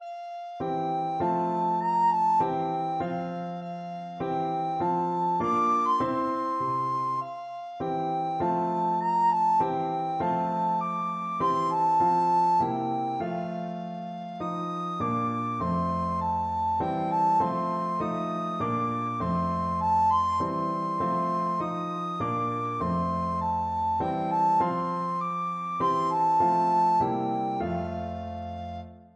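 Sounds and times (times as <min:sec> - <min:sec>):
recorder melody: 0:00.0 - 0:29.0.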